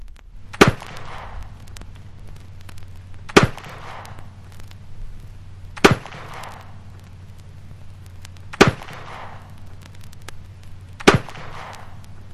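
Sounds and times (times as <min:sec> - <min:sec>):
50 caliber Kentucky flintlock rifle fired with 60 grains of black powder: 0:00.6 - 0:01.5, 0:03.3 - 0:04.3, 0:05.8 - 0:06.8, 0:08.5 - 0:09.5, 0:11.0 - 0:12.0.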